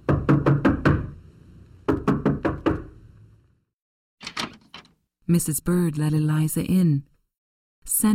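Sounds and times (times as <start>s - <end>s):
knocking on a wooden door: 0.1s - 1.1s, 1.9s - 2.9s
speech: 5.3s - 7.1s, 7.9s - 8.1s.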